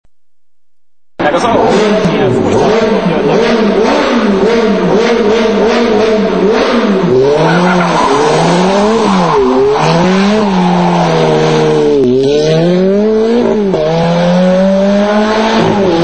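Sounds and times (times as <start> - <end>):
Ferrari F430 passing through a tunnel: 1.3 - 16.0.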